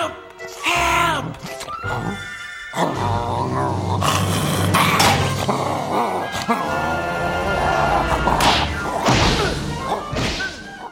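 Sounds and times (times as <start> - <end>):
busy music: 0.0 - 10.9
frantic voices: 0.6 - 10.2
cartoon smashes and thwacks of a character slammed into a statue: 8.4 - 10.8.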